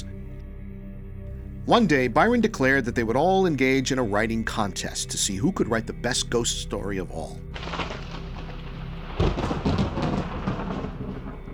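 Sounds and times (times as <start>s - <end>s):
speech: 1.6s - 7.9s
low rolling thunder rumbling: 7.5s - 11.5s.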